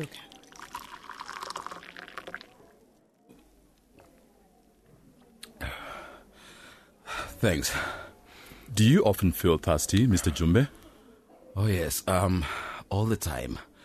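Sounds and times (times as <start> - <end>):
speech: 0.0 - 0.3, 7.4 - 8.0, 8.7 - 10.8, 11.6 - 13.7
water pouring into a glass: 0.0 - 2.7.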